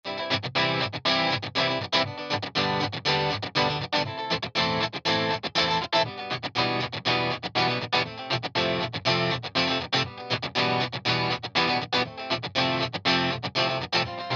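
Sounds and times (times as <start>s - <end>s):
dry electric guitar: 0.0s - 14.3s.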